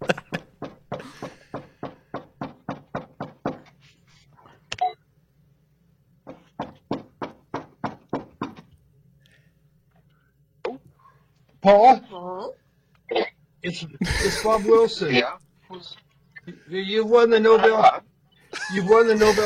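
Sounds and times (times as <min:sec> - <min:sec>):
laughter: 0:00.0 - 0:01.4, 0:14.0 - 0:14.9, 0:18.5 - 0:19.4
rapid knocking on a door: 0:00.0 - 0:03.7, 0:06.2 - 0:08.7
speech: 0:11.6 - 0:12.6, 0:13.6 - 0:15.4, 0:16.7 - 0:18.0, 0:18.7 - 0:19.4.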